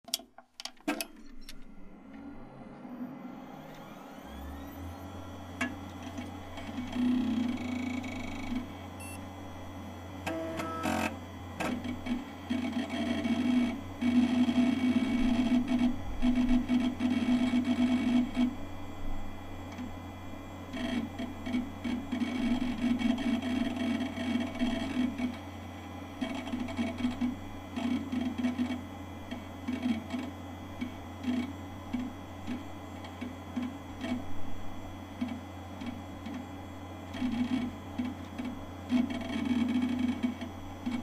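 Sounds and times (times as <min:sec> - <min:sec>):
PC hard drive whir at startup: 0:00.8 - 0:41.0.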